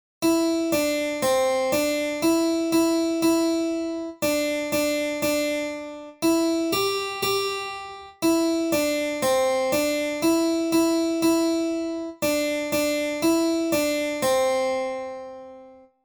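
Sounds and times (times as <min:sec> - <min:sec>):
harpsichord melody: 0:00.2 - 0:15.8.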